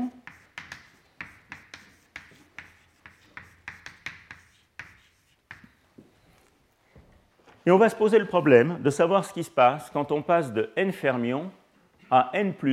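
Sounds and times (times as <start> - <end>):
handwriting on a board during a physics lecture: 0.0 - 5.8
speech: 7.7 - 12.7.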